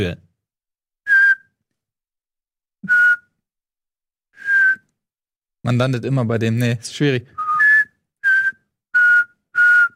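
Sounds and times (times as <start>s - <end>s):
speech: 0.0s - 0.2s, 5.6s - 7.4s
whistled imitation of a reversing truck beeper: 1.1s - 1.6s, 2.8s - 3.4s, 4.4s - 5.0s, 7.3s - 9.9s.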